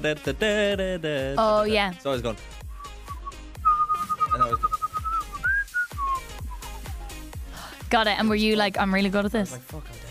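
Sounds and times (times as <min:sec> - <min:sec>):
speech: 0:00.0 - 0:02.6, 0:04.4 - 0:04.8, 0:07.9 - 0:10.0
steady thumping beat: 0:02.7 - 0:09.0
person whistling a pop song melody: 0:02.8 - 0:07.2.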